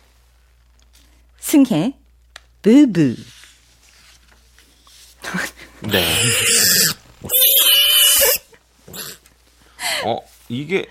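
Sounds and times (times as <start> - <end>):
speech: 1.5 - 2.0, 2.6 - 3.3, 5.8 - 7.4, 10.0 - 10.8
pig oinking and squealing: 5.9 - 9.2.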